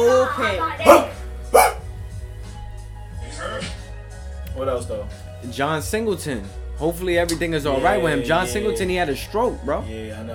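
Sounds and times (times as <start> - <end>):
speech: 0.2 - 1.1, 4.6 - 10.3
dog barking: 0.8 - 1.9.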